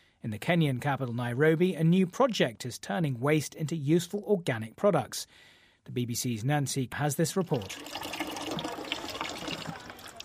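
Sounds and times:
speech: 0.2 - 8.2
water trickling from a tap on a small white plastic drum: 7.4 - 10.2.

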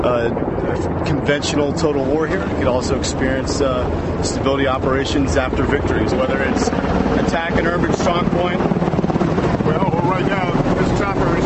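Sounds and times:
speech: 0.0 - 9.0, 10.1 - 11.4
rescue helicopter rotor and wind noise during a military exercise: 0.0 - 11.4.

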